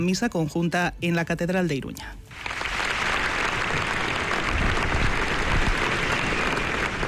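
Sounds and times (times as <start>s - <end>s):
speech: 0.0s - 2.5s
large crowd applauding at a mass funeral farewell in Pamplona Spain: 2.3s - 7.0s.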